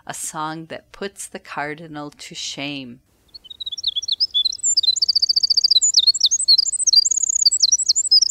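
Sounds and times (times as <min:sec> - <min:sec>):
speech: 0:00.1 - 0:03.1
winter wren singing: 0:03.2 - 0:08.2.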